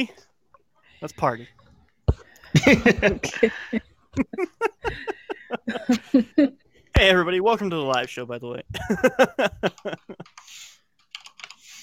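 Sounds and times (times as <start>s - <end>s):
speech: 0.0s - 0.3s, 1.0s - 1.6s, 2.5s - 10.7s
laughter: 2.4s - 6.6s, 8.7s - 10.4s
clicking and typing on a computer: 9.6s - 11.7s.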